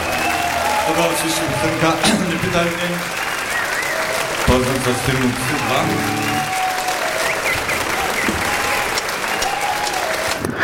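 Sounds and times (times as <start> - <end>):
large audience applause from a live recording: 0.0 - 10.6
speech: 0.9 - 3.2, 4.5 - 6.3.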